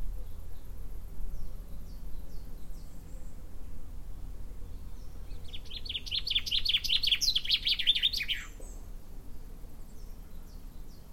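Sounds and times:
common chaffinch Fringilla coelebs singing: 0.0s - 3.6s, 4.2s - 11.1s
low background rumble: 0.0s - 11.1s.

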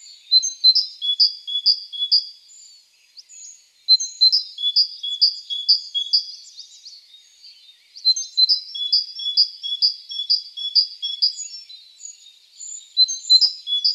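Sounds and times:
great tit Parus major singing bright two-note phrases: 0.0s - 13.9s.

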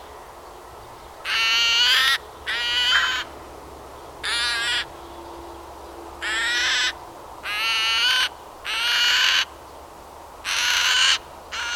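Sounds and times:
Eurasian magpie Pica pica harsh buzzy calls: 1.2s - 3.3s, 4.2s - 4.9s, 6.2s - 9.5s, 10.4s - 11.7s.

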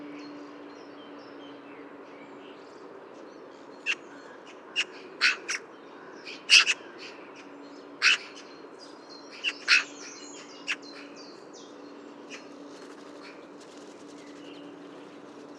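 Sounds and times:
Eurasian magpie Pica pica making harsh grating notes: 4.8s - 5.6s, 6.3s - 6.8s, 8.0s - 8.4s, 9.4s - 11.0s.

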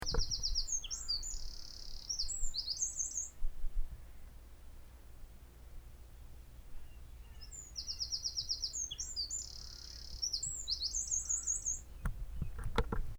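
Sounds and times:
Eurasian wren trilling: 0.0s - 3.4s, 6.8s - 12.6s.

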